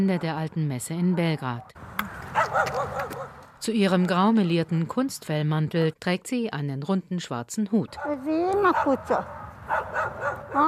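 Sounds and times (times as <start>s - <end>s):
low outdoor background: 0.0s - 10.6s
speech: 0.0s - 10.6s
stray dogs barking and yipping: 1.0s - 3.5s, 7.9s - 10.6s.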